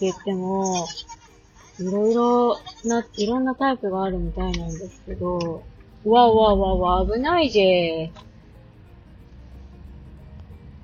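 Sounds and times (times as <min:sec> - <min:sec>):
speech: 0:00.0 - 0:01.2, 0:01.8 - 0:08.3
road noise: 0:03.0 - 0:10.8
car pulling out with engine rumbling: 0:04.0 - 0:10.8.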